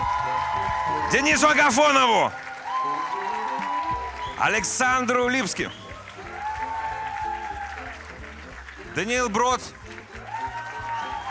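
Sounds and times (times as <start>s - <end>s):
studio audience cheering: 0.0s - 8.4s, 10.1s - 11.2s
studio audience applause for a music group: 0.0s - 11.2s
speech: 1.1s - 2.5s, 4.4s - 5.8s, 9.0s - 9.8s
sustained whistle-like tone: 5.5s - 6.0s.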